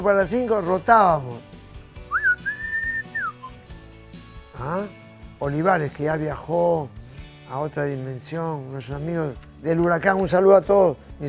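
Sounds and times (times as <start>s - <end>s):
speech: 0.0s - 1.5s, 4.6s - 11.2s
person whistling a short signal call: 2.1s - 3.6s.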